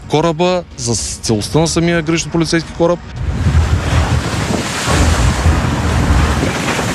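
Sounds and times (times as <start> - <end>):
speech: 0.1 - 3.5
strong wind buffeting the microphone: 3.1 - 6.9
rough stormy sea waves crashing at sea state 4: 3.2 - 6.9.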